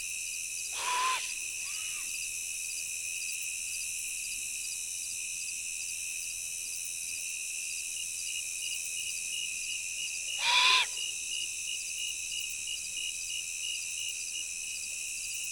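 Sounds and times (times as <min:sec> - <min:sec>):
shrill insect chorus on a prairie preserve in late summer: 0:00.1 - 0:05.1, 0:06.1 - 0:15.5
second great horned owl calling: 0:00.7 - 0:01.9, 0:10.4 - 0:11.0
immature great horned owl screeching in a tree at night: 0:00.8 - 0:02.0, 0:10.4 - 0:11.0.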